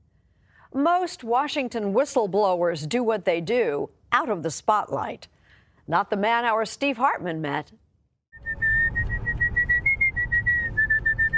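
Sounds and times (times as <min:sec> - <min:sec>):
speech: 0:00.7 - 0:07.8
person whistling a lively tune: 0:08.4 - 0:11.3.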